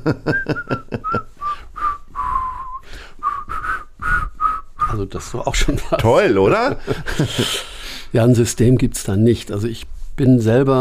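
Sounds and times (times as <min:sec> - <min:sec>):
speech: 0:00.0 - 0:00.8, 0:05.0 - 0:10.8
laughter: 0:00.0 - 0:01.3, 0:05.6 - 0:07.7
person whistling a melody: 0:00.3 - 0:05.0.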